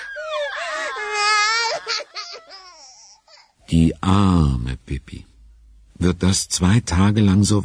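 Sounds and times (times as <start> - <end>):
baby wailing and whimpering: 0.0 - 3.6
speech: 3.7 - 5.3, 6.0 - 7.6.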